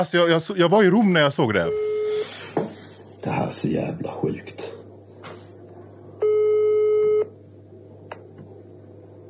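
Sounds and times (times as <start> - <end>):
speech: 0.0 - 4.8
low hum: 0.0 - 9.2
telephone ringing tone on a call to the Swedish Social Insurance Agency: 1.7 - 2.2, 6.2 - 7.3.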